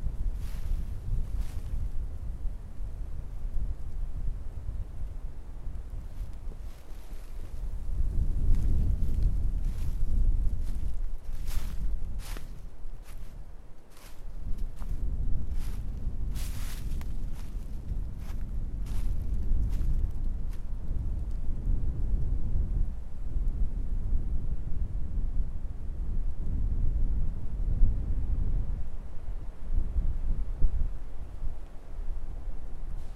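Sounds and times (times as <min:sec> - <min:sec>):
strong winter wind through a forest on Bükk limestone mountain in Hungary: 0:00.0 - 0:33.1.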